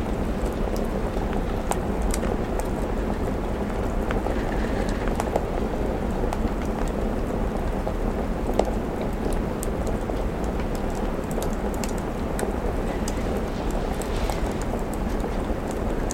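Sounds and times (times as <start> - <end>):
crackling fireplace: 0.0 - 16.1
steady soft autumn rain on a window: 0.0 - 16.1.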